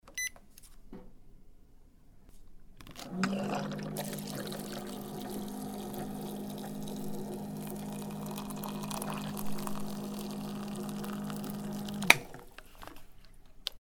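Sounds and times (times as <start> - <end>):
hot water in a pot: 3.1 - 12.4.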